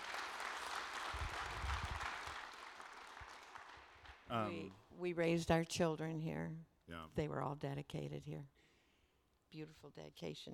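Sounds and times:
crowd applauding: 0.0 - 4.4
speech: 4.3 - 8.6, 9.5 - 10.5.

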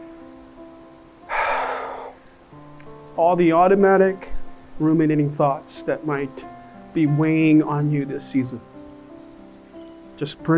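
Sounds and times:
deep exhale during guided prayer: 1.3 - 2.3
speech: 3.2 - 8.7, 10.2 - 10.5.

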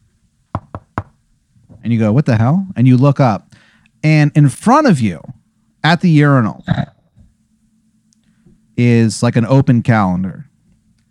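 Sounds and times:
sharp knocks on a door: 0.5 - 1.2
speech: 1.9 - 7.0, 8.8 - 10.5.

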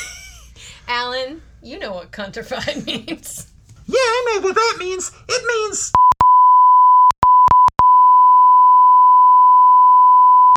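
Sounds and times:
laughter: 0.0 - 0.5, 2.6 - 5.9
speech: 1.2 - 6.0
censor bleep tone: 6.0 - 10.5.

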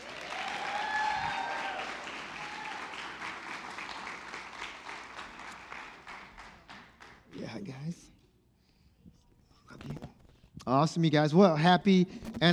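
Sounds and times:
audience whooping and cheering: 0.0 - 6.0
audience applause: 0.0 - 7.7
speech: 7.6 - 8.2, 10.7 - 12.5.

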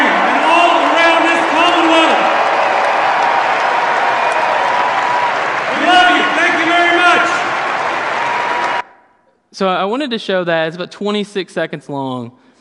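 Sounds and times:
large crowd applauding in a standing ovation: 0.0 - 8.8
people cheering and whooping: 0.0 - 8.9
speech: 9.6 - 12.4.

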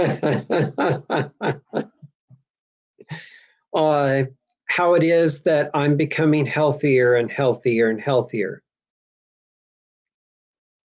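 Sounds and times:
speech: 0.0 - 1.3, 3.8 - 8.6
person coughing harshly: 0.0 - 1.7
raspy sputtering throat-clear: 0.0 - 1.9
laughter: 0.0 - 2.1.

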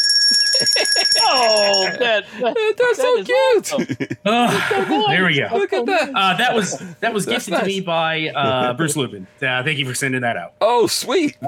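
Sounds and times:
small hand bell ringing: 0.0 - 2.0
laughter: 0.4 - 7.6, 8.4 - 9.0
speech: 0.6 - 11.4.

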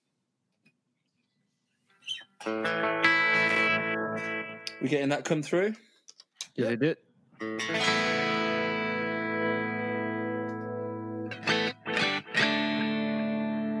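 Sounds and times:
distorted electric guitar chord through a low-cost headphone amp: 2.5 - 4.6, 7.4 - 13.7
speech: 4.8 - 5.9, 6.6 - 7.1.

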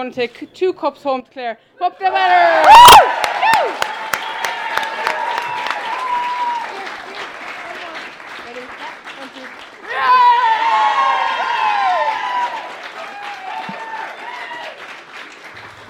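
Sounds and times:
speech: 0.0 - 4.0
large crowd roaring and cheering: 2.0 - 8.0, 9.8 - 15.8
scattered clapping: 2.6 - 15.8.

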